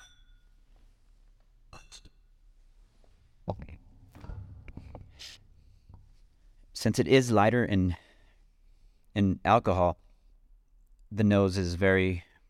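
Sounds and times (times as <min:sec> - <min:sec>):
glasses clinking in a bourbon toast: 0:00.0 - 0:00.5
speech: 0:01.8 - 0:02.1, 0:06.8 - 0:08.0, 0:09.2 - 0:10.0, 0:11.1 - 0:12.3.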